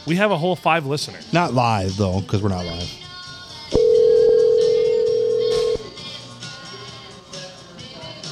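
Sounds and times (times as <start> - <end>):
speech: 0.0 - 3.0
telephone ringback tone as a phone call is dialed: 3.8 - 5.9.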